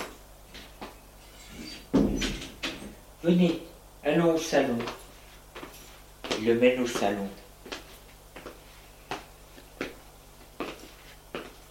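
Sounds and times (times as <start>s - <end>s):
apartment door opening with clicks and creaks: 1.4s - 2.9s
apartment door shutting with a heavy thud: 1.8s - 3.0s
speech: 3.2s - 5.0s, 6.4s - 7.4s.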